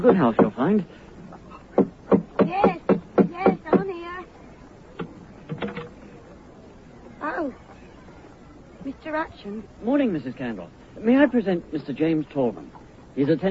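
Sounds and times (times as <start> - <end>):
speech: 0.0 - 1.0, 9.0 - 13.4
sharp wooden knocks on a front door: 1.8 - 3.9.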